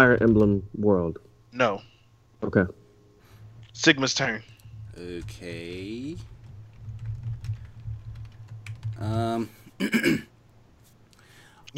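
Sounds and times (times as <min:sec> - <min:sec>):
speech: 0:00.0 - 0:02.8, 0:03.8 - 0:06.3, 0:09.0 - 0:10.3
low hum: 0:00.0 - 0:09.8
typing on a computer keyboard: 0:04.5 - 0:09.2.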